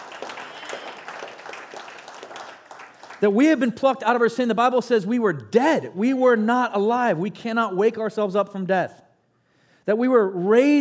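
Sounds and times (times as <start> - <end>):
crowd clapping in a room: 0.0 - 3.6
speech: 3.2 - 9.0, 9.8 - 10.7.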